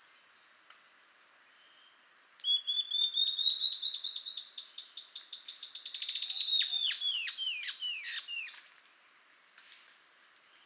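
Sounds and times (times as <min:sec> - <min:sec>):
ocellated antbird song, subspecies mcleannani: 0:01.6 - 0:08.6.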